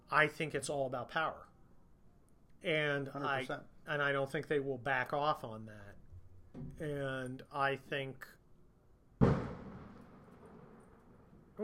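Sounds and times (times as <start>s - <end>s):
speech: 0.1s - 1.5s, 2.6s - 6.0s, 6.6s - 8.4s
firecracker going off outdoors in the suburbs: 9.2s - 11.5s.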